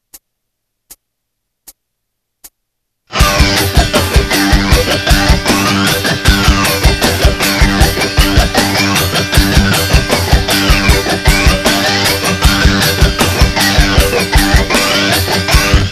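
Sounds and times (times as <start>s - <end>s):
funky guitar scratching: 3.1s - 15.8s.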